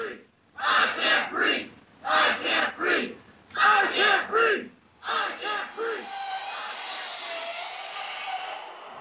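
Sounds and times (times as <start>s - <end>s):
large crowd at a protest march chanting in unison: 0.0s - 6.0s.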